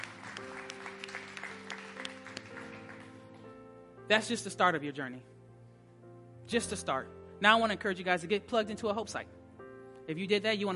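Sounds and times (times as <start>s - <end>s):
crowd applauding: 0.0s - 3.4s
speech: 4.1s - 5.3s, 6.5s - 9.4s, 10.1s - 10.7s.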